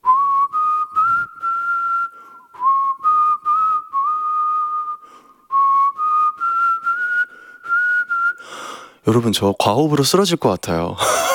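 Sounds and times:
person whistling a bright steady melody: 0.0s - 8.8s
speech: 9.1s - 11.3s
laughter: 11.0s - 11.3s.

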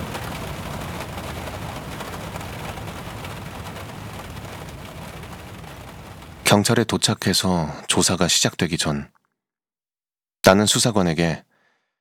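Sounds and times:
sudden rain shower pouring down while driving to Suwon: 0.0s - 6.8s
speech: 6.5s - 9.2s, 10.5s - 11.5s.

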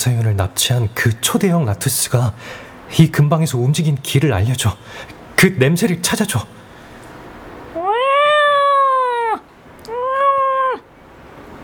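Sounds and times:
speech: 0.0s - 6.6s
large hefty cat meowing loudly: 7.8s - 10.9s.

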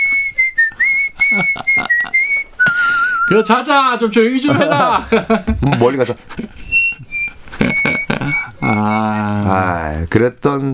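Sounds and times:
person whistling a short melodic tune outside: 0.0s - 3.4s, 6.6s - 9.4s
laughter: 1.2s - 3.1s, 4.3s - 9.9s
speech: 1.3s - 1.8s, 3.3s - 6.7s, 8.8s - 10.7s.

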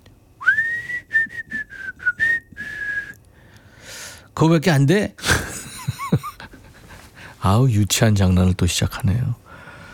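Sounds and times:
person whistling a short melodic phrase: 0.4s - 3.2s
speech: 4.4s - 5.4s, 7.4s - 9.4s.

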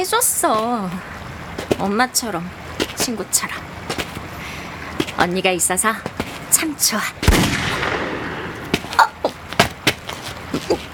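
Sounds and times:
speech: 0.0s - 1.2s, 1.8s - 3.8s, 5.2s - 7.9s
burst of sharp gunshots: 7.3s - 9.0s.

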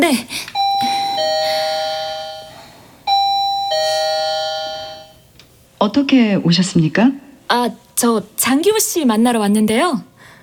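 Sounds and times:
speech: 0.0s - 0.4s, 5.8s - 10.1s
two-tone doorbell ding-dong: 0.6s - 5.3s.

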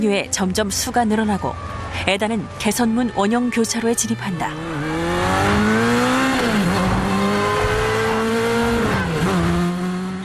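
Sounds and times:
speech: 0.0s - 4.9s
police car, motorcycle and car engines roaring in a chase: 3.9s - 10.2s
car tires squealing in a chase: 4.0s - 9.5s.

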